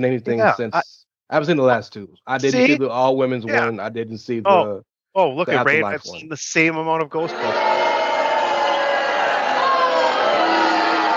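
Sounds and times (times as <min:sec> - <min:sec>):
speech: 0:00.0 - 0:07.7
large crowd booing loudly: 0:07.3 - 0:11.1.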